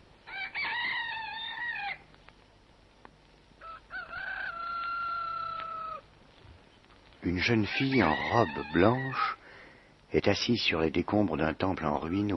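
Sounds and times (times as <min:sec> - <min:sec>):
rooster crowing: 0:00.2 - 0:02.0, 0:03.6 - 0:06.1, 0:07.4 - 0:09.4, 0:12.1 - 0:12.3
speech: 0:07.2 - 0:09.4, 0:10.1 - 0:12.3.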